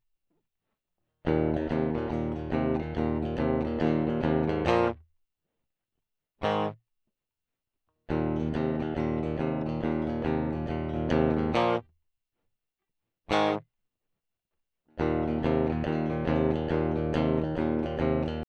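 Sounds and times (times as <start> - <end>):
clean combo amp tone: 1.3 - 4.9, 8.1 - 11.8, 15.0 - 18.4.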